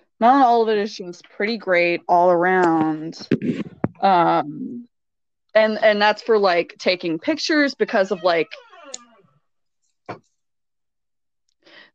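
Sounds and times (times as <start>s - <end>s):
speech: 0.2s - 4.9s, 5.5s - 8.6s
creaky door groaning open with a falling squeal: 7.8s - 9.4s.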